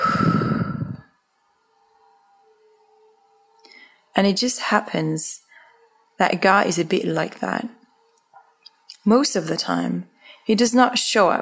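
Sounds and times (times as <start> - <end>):
deep breath in and out: 0.0 - 1.1, 10.2 - 10.5
speech: 4.2 - 5.4, 6.2 - 7.8, 9.0 - 11.4.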